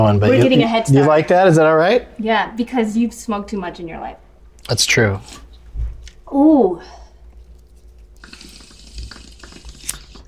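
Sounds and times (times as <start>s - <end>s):
speech: 0.0s - 5.4s, 6.3s - 7.0s
water bubbling and gurgling in a water pipe: 8.2s - 10.2s.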